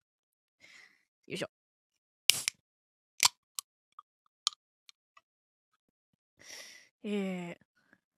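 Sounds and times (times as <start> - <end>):
speech: 1.3 - 1.5, 7.0 - 7.7
energy drink can being opened: 2.3 - 2.5.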